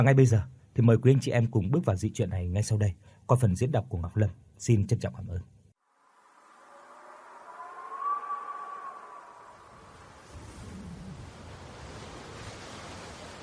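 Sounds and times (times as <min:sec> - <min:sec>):
speech: 0:00.0 - 0:05.6
howling storm wind outside a maternity home: 0:06.0 - 0:13.4
pouring rain outside a maternity home: 0:06.0 - 0:13.4.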